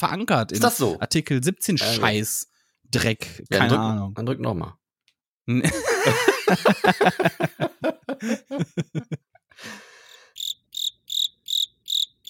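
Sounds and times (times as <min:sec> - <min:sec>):
speech: 0:00.0 - 0:04.8, 0:05.5 - 0:09.8
laughter: 0:05.6 - 0:09.8
cricket chirping: 0:10.3 - 0:12.2.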